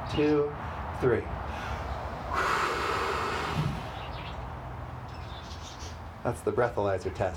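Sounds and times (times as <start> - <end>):
speech: 0.1 - 1.7, 6.2 - 7.3
person taking a deep breath and exhaling: 1.5 - 4.1.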